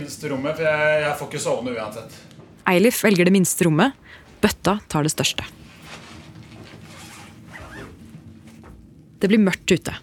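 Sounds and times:
speech: 0.0s - 5.7s, 9.2s - 10.0s
rustling and handling noises of people unpacking bags: 5.4s - 9.2s
bag zipper pulled open while unpacking: 5.8s - 8.2s.

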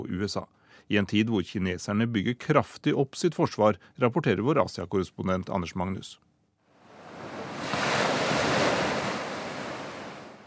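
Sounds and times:
speech: 0.0s - 6.3s
long gentle ocean waves washing onto an exotic beach: 6.7s - 10.4s.

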